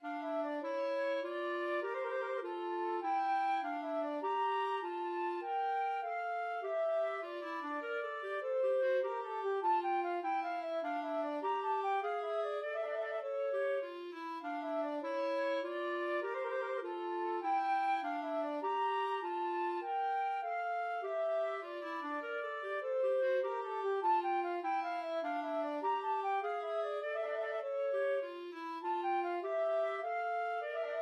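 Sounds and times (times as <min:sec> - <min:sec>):
flute and clarinet duet playing a minuet: 0:00.0 - 0:31.0.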